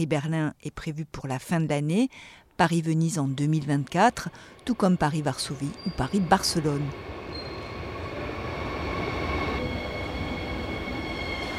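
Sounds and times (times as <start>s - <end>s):
speech: 0.0s - 7.1s
night train wheels rumbling on rails arriving at a station: 3.6s - 11.5s
high-pitched train wheel squeal: 5.6s - 6.4s, 7.2s - 11.5s.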